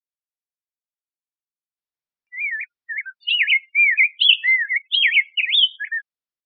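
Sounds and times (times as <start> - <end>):
rose-breasted grosbeak warbling: 2.3 - 6.0.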